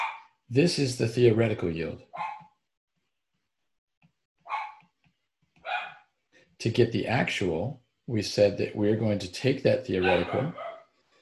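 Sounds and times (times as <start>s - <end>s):
dog barking: 0.0s - 0.3s, 2.1s - 2.6s, 4.5s - 4.9s, 5.6s - 6.1s, 10.0s - 10.9s
speech: 0.5s - 2.3s, 6.6s - 10.7s.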